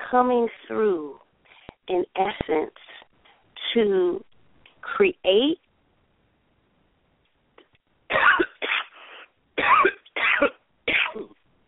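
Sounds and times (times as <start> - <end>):
speech: 0.1 - 1.2, 1.9 - 3.0, 3.7 - 4.3, 4.9 - 5.6, 9.6 - 10.6
dry coughing from a tickle in the throat: 8.1 - 11.4.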